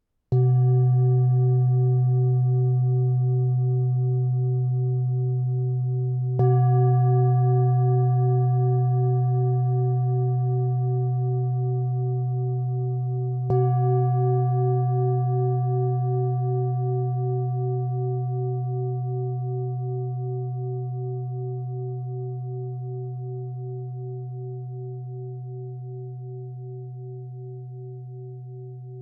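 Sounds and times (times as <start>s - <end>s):
shiny Tibetan bowl: 0.3s - 29.0s.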